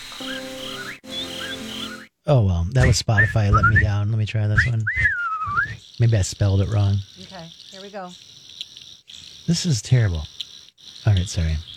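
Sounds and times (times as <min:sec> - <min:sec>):
crickets chirping: 0:00.0 - 0:02.1, 0:04.6 - 0:11.7
speech: 0:00.2 - 0:00.5, 0:02.3 - 0:08.4, 0:09.5 - 0:10.4, 0:11.0 - 0:11.7.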